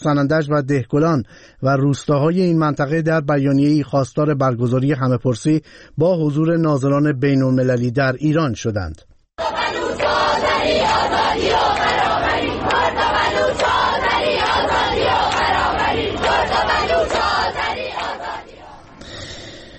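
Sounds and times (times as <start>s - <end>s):
speech: 0.0s - 9.1s
large crowd of students chanting slogans at a university protest rally: 9.4s - 18.9s.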